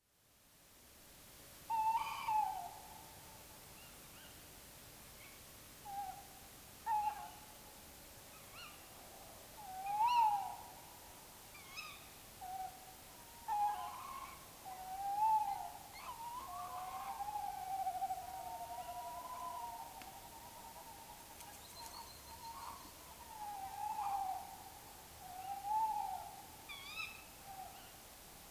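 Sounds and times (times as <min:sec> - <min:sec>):
male and female tawny owl calling: 0:01.7 - 0:02.7, 0:09.6 - 0:10.7, 0:11.5 - 0:27.9.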